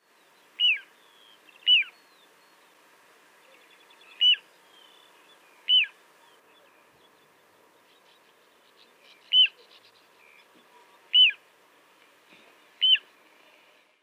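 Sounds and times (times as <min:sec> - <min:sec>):
little ringed plover calling: 0:00.6 - 0:02.2, 0:03.4 - 0:07.0, 0:07.8 - 0:11.5, 0:12.5 - 0:13.7.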